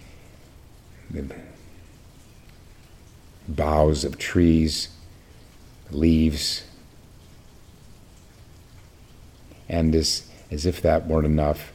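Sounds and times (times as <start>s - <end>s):
soft rain falling: 0.0s - 11.7s
speech: 1.1s - 1.7s, 3.5s - 5.0s, 5.9s - 6.7s, 9.7s - 11.7s.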